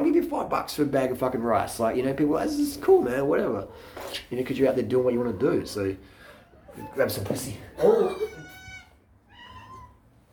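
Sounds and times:
speech: 0.4s - 6.2s, 6.8s - 8.4s
cat meowing: 5.0s - 10.1s.

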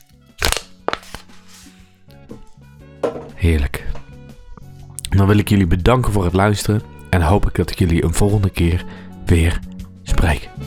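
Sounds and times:
drink can cracked open: 0.0s - 1.7s
speech: 3.4s - 3.8s, 5.2s - 10.6s.

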